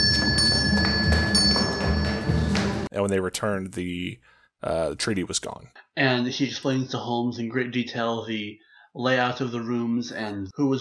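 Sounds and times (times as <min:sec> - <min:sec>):
bell ringing in a workroom: 0:00.0 - 0:02.9
speech: 0:03.0 - 0:10.7.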